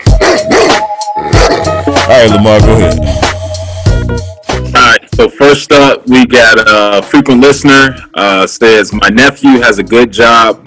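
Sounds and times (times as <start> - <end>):
dog barking: 0.0 - 0.8, 1.4 - 1.8
speech: 2.2 - 3.2, 5.2 - 10.6.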